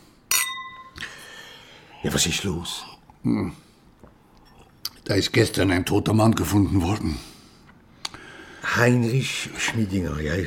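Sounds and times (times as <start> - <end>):
wine glasses clinking in a toast: 0.3 - 1.1
speech: 2.0 - 3.7, 5.1 - 7.3, 8.7 - 10.4.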